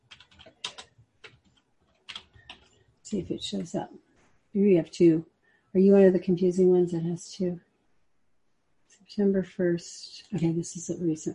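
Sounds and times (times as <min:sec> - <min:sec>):
typing on a computer keyboard: 0:00.0 - 0:02.9
speech: 0:03.1 - 0:07.7, 0:09.1 - 0:11.3.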